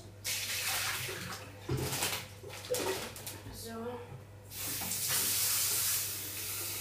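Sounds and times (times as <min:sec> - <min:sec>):
old water pouring and splashing out before boiling fresh water: 0:00.3 - 0:03.3, 0:04.5 - 0:06.7.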